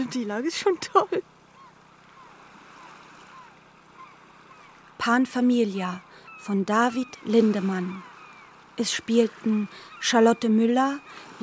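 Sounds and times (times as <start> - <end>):
sea waves rolling onto the shore beside a campsite: 0.0 - 11.4
speech: 0.1 - 1.4, 5.0 - 8.1, 8.8 - 11.4.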